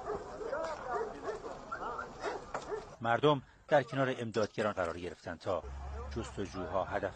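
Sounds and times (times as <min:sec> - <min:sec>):
search and rescue dog barking and yipping during earthquake search in Afghanistan: 0:00.0 - 0:03.0
speech: 0:03.0 - 0:07.1.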